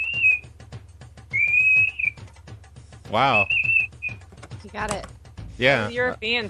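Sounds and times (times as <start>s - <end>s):
person whistling a 2600 Hz telephone signaling tone: 0.0s - 0.4s, 1.3s - 2.2s, 3.3s - 4.2s
speech: 3.1s - 3.7s, 4.7s - 6.4s.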